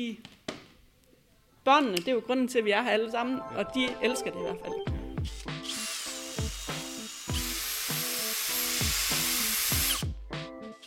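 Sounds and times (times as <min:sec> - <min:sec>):
speech: 0:00.0 - 0:00.4, 0:01.6 - 0:05.4
power screwdriver whining while driving screws: 0:05.6 - 0:10.1.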